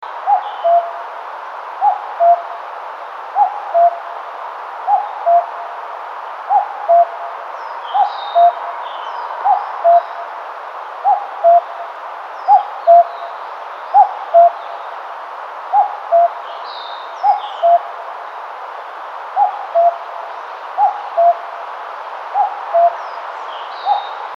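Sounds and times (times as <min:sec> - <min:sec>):
Cuculus canorus calling: 0:00.2 - 0:01.0, 0:01.8 - 0:02.6, 0:03.4 - 0:04.1, 0:04.8 - 0:05.6, 0:06.5 - 0:10.4, 0:11.0 - 0:11.8, 0:12.4 - 0:13.3, 0:13.9 - 0:14.6, 0:15.7 - 0:16.4, 0:17.1 - 0:18.0, 0:19.4 - 0:21.5, 0:22.4 - 0:23.2, 0:23.8 - 0:24.3.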